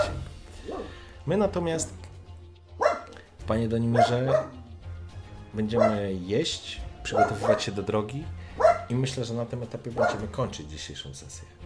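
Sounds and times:
dog barking in a farmyard: 0:00.0 - 0:01.0, 0:02.8 - 0:03.2, 0:03.9 - 0:04.7, 0:05.6 - 0:06.2, 0:07.1 - 0:07.9, 0:08.5 - 0:09.0, 0:10.0 - 0:10.3
speech: 0:01.3 - 0:02.0, 0:03.5 - 0:04.6, 0:05.5 - 0:11.6.

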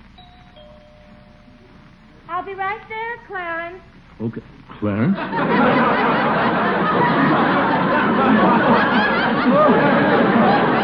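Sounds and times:
steady low hum: 0:00.0 - 0:10.8
doorbell ringing with a soft two-tone chime: 0:00.2 - 0:02.0
speech: 0:02.4 - 0:07.6
laughter: 0:05.0 - 0:10.8.

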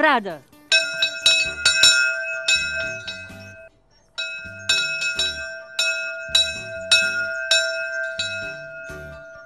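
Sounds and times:
speech: 0:00.0 - 0:00.5
old bell ringing: 0:00.7 - 0:09.4.

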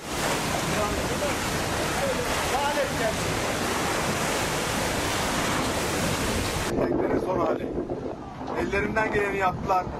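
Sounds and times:
rain during a winter storm in Turkey: 0:00.0 - 0:06.8
gusting wind during a winter storm in Turkey: 0:00.0 - 0:09.9
storm-driven waves pounding the shore during a winter storm in Turkey: 0:00.0 - 0:09.9
speech: 0:09.0 - 0:09.9.

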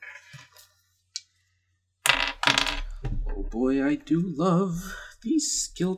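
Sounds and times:
dice rolling on a table during a tabletop role-playing game roll: 0:02.1 - 0:03.0
speech: 0:03.5 - 0:05.9.

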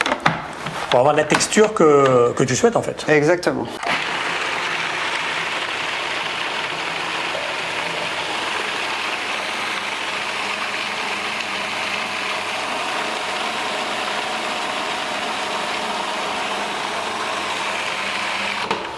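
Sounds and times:
speech: 0:00.9 - 0:03.8
food processor coarsely blending raw food ingredients: 0:03.8 - 0:18.9.

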